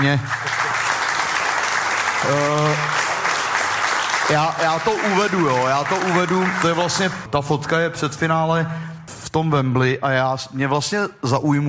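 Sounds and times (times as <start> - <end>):
speech: 0.0 - 0.4, 2.2 - 3.0, 4.3 - 11.6
audience applause: 0.0 - 7.3.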